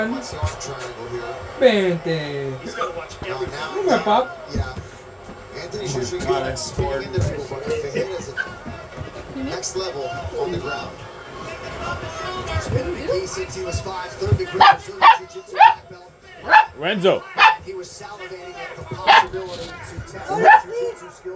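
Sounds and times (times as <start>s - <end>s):
speech: 0.0s - 4.9s, 5.6s - 8.7s, 9.4s - 11.1s, 11.7s - 21.3s
indistinct talking: 0.0s - 21.3s
dog barking: 14.3s - 17.9s, 18.5s - 20.9s.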